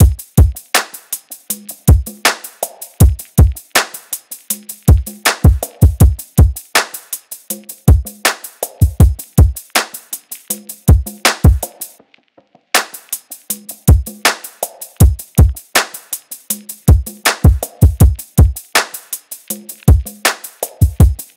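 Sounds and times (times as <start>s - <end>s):
full drum loop at 80 BPM: 0.0s - 12.0s, 12.7s - 21.3s.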